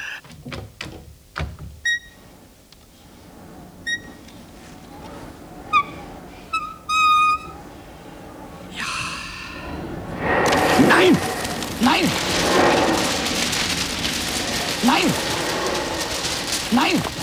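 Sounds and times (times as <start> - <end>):
window eased open with care, creaking: 0.0 - 17.2
soft knocks and clicks: 0.2 - 7.6.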